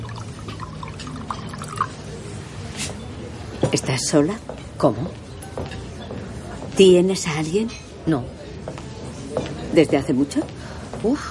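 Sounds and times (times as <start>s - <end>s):
wine poured into a glass by a waiter: 0.0s - 2.2s
soft drips of wine: 0.0s - 2.3s
speech: 3.7s - 5.8s, 6.8s - 8.4s, 9.7s - 11.3s.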